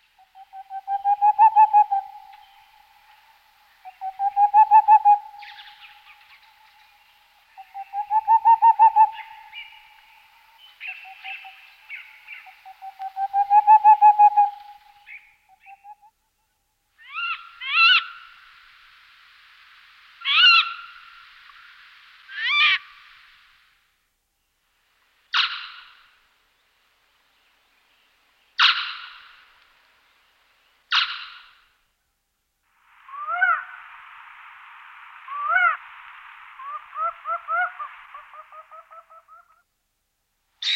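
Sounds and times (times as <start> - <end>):
boreal owl singing and calling: 0.2 - 16.1, 17.0 - 18.2, 20.2 - 20.9, 22.3 - 22.9, 25.3 - 26.0, 28.6 - 29.4, 30.9 - 31.5, 36.6 - 39.6.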